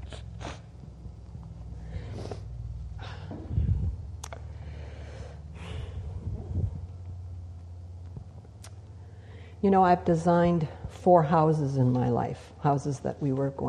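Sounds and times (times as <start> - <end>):
person blowing nose: 0.0 - 0.7
speech: 9.6 - 13.6.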